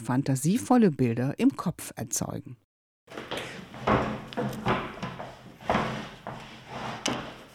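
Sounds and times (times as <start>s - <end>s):
speech: 0.0s - 3.3s
wooden chair knocking, creaking and scraping as someone stands and sits: 3.1s - 7.5s.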